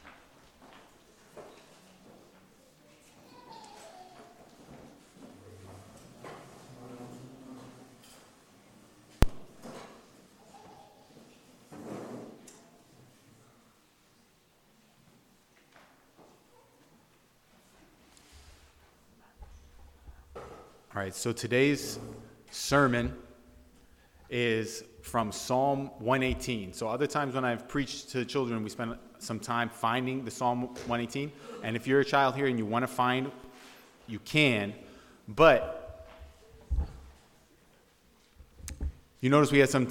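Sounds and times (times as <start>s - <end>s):
chairs being dragged and shifted around a room: 4.6s - 8.4s, 11.7s - 12.5s, 21.8s - 22.4s
speech: 21.0s - 23.2s, 24.3s - 33.4s, 34.1s - 35.8s, 39.2s - 39.8s.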